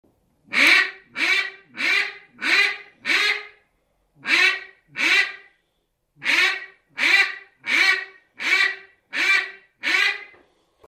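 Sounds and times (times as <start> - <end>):
mallard duck: 0.5 - 3.6, 4.2 - 5.5, 6.2 - 10.4.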